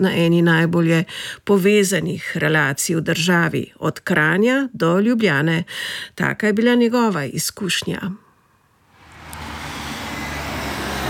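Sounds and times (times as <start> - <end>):
speech: 0.0 - 8.2
road traffic at a bus stop on a main traffic artery in Kranj Slovenia: 8.8 - 11.0
vehicle approaching with engine and tyre rumble: 8.8 - 11.0.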